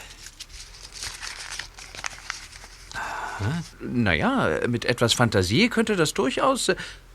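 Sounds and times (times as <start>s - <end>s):
white crumpled paper ball being unfolded, crinkling: 0.0s - 3.7s
speech: 3.4s - 7.1s.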